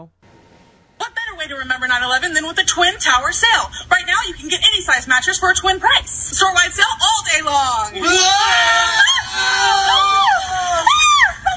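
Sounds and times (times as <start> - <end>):
speech: 0.0 - 0.3, 1.4 - 11.0
several people screaming and yelling in a TV mattress commercial: 8.0 - 11.4.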